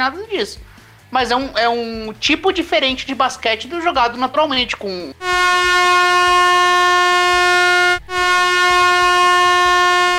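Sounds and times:
speech: 0:00.0 - 0:06.0
loud piercing air horn blast: 0:05.2 - 0:10.1.

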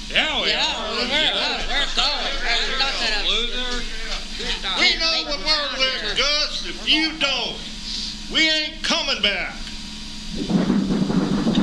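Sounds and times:
speech: 0:00.1 - 0:07.7, 0:08.3 - 0:09.6
rumbling thunder from a passing storm: 0:10.3 - 0:11.6.

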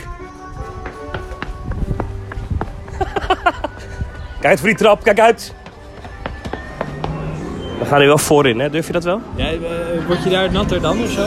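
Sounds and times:
footsteps of someone running through an empty amusement park ride queue line on a hard floor: 0:00.6 - 0:02.9, 0:05.6 - 0:07.2
laughter: 0:02.9 - 0:04.1
speech: 0:04.4 - 0:05.6, 0:07.9 - 0:11.2.

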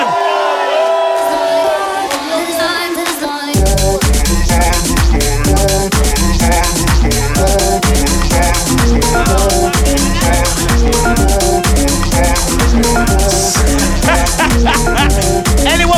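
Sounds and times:
loud crowd cheering and whooping: 0:00.0 - 0:02.9, 0:08.4 - 0:15.3
heavy rhythmic thumping: 0:03.6 - 0:15.9
laughter: 0:08.0 - 0:15.9.

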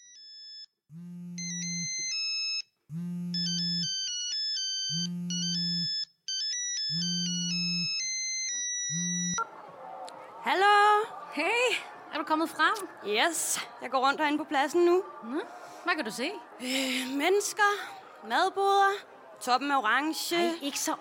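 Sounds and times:
mobile phone ringtone for an incoming call: 0:00.0 - 0:00.7, 0:01.4 - 0:02.7, 0:03.3 - 0:09.4
mobile phone vibrating: 0:00.9 - 0:02.0, 0:02.9 - 0:04.0, 0:04.9 - 0:05.9
laughter: 0:09.2 - 0:20.9
speech: 0:10.5 - 0:10.7, 0:11.4 - 0:20.9.

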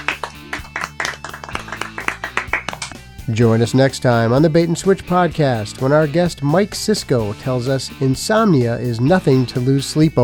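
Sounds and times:
small group clapping hands: 0:00.0 - 0:03.0
speech: 0:03.3 - 0:10.2.

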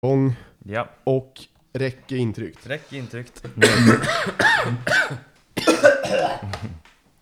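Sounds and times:
speech: 0:00.0 - 0:05.3
person coughing harsh chesty coughs: 0:03.4 - 0:06.8.

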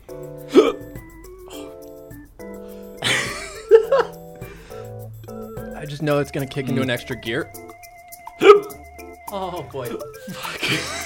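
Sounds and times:
soft tonal music: 0:00.0 - 0:11.0
person hiccupping after eating spicy food: 0:00.4 - 0:01.9, 0:08.4 - 0:08.8
laughter: 0:03.0 - 0:04.1, 0:10.2 - 0:11.0
speech: 0:05.9 - 0:07.6, 0:09.3 - 0:11.0.

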